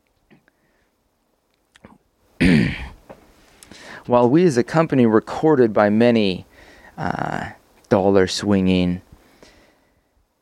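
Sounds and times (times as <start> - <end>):
faint mouth clicks: 1.5 - 2.0
speech: 4.0 - 9.1.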